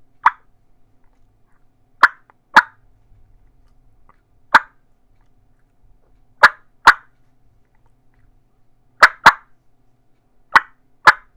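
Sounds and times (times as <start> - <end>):
clucking: 0.2 - 0.5, 2.0 - 2.8, 4.5 - 4.8, 6.4 - 7.2, 9.0 - 9.5, 10.5 - 11.3.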